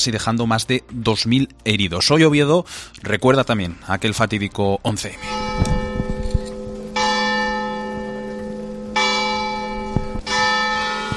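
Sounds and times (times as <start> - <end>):
speech: 0.0 - 5.8
church bells tolling at town square: 5.0 - 11.1.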